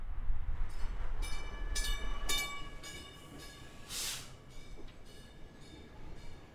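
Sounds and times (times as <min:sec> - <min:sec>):
commuter train pulling into a station in East Chicago, Indiana: 0:00.0 - 0:06.5
high-pitched squealing of a commuter train pulling into a station: 0:03.7 - 0:04.8.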